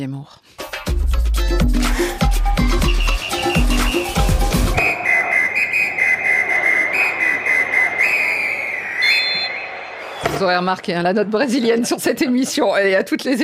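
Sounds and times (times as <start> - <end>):
speech: 0.0 - 0.6, 1.5 - 3.0, 10.4 - 13.4
rhythmic music: 0.6 - 7.9
shrill trilling referee whistle blasts: 2.7 - 10.4.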